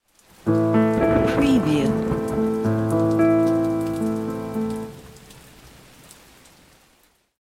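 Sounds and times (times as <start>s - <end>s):
arpeggiated piano in octave three: 0.5s - 5.0s.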